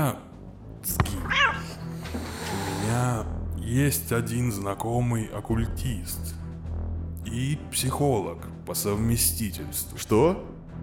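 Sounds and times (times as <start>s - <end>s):
speech: 0.1s - 1.0s, 3.7s - 6.4s, 7.3s - 10.6s
black cat meowing: 1.0s - 2.8s.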